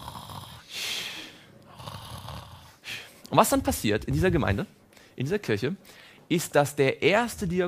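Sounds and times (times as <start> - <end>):
person imitating snoring with their voice: 0.0 - 1.1, 1.7 - 2.8
speech: 3.3 - 7.6.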